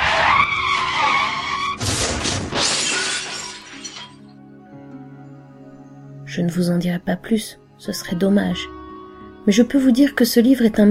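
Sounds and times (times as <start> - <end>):
car tires squealing in a long high-pitched skid: 0.0 - 2.5
car crash as the car runs over a person: 0.0 - 4.2
debris clattering: 1.8 - 4.3
glass shattering: 1.8 - 4.3
speech: 6.4 - 8.8, 9.5 - 10.8.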